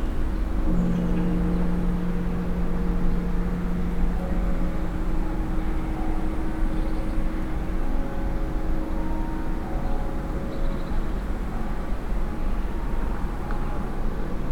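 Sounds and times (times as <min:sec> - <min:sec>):
bells of two churches ringing: 0:00.1 - 0:14.4.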